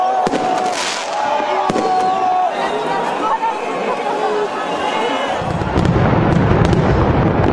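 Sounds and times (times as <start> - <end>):
large outdoor crowd murmuring: 0.0 - 7.5
fireworks salute cracking and popping: 0.2 - 2.4, 5.4 - 7.5
deep rumbling boom: 5.4 - 7.5.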